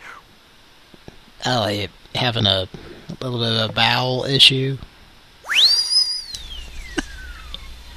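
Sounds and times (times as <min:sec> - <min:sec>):
speech: 0:01.5 - 0:04.9
loud whistle: 0:05.4 - 0:07.6.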